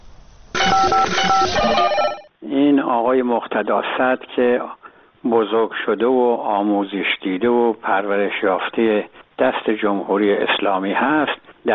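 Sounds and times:
telephone answering line ringing with bright electronic tones: 0.6s - 2.3s
speech: 0.8s - 11.7s.

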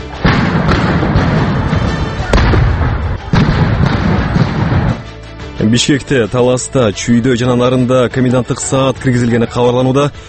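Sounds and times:
gunfire during clashes between demonstrators and police outside the government building in Bishkek: 0.2s - 5.1s
speech: 5.7s - 10.2s.

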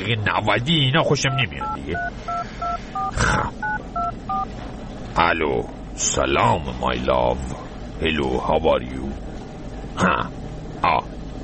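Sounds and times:
speech: 0.1s - 9.3s, 10.0s - 11.2s
telephone keypad tones as a phone call is placed: 1.3s - 4.5s.

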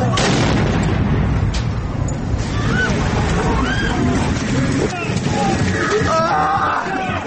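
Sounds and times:
loud booming blasts and crackling impacts of an explosion: 0.1s - 4.4s
people shouting and screaming for help: 2.5s - 4.1s, 5.0s - 7.2s.

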